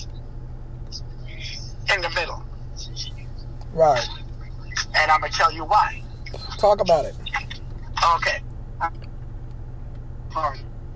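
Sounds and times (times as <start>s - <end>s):
idling car with air conditioning running: 0.0s - 10.9s
speech: 3.7s - 4.2s, 5.0s - 6.0s, 6.6s - 7.2s, 8.0s - 9.0s, 10.4s - 10.6s.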